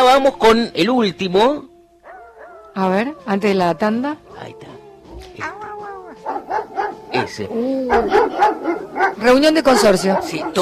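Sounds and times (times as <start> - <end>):
speech: 0.2 - 1.7, 2.8 - 4.8, 5.4 - 10.6
dog barking: 2.0 - 2.7, 6.0 - 7.3, 7.9 - 10.6
dog yowling: 2.0 - 4.4, 5.1 - 10.6.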